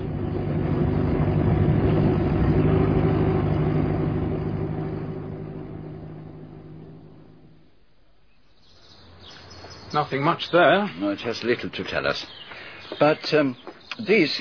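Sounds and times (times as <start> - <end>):
car engine idling while parking at a lodge: 0.0 - 7.9
speech: 10.0 - 14.3.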